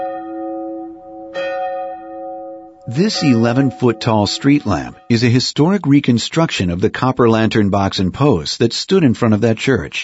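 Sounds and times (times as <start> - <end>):
large bell tolling in the steeple of a Methodist church: 0.0 - 5.5
speech: 2.9 - 10.0.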